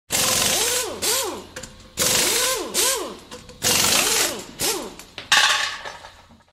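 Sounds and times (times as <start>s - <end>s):
pneumatic air wrench: 0.1s - 5.2s.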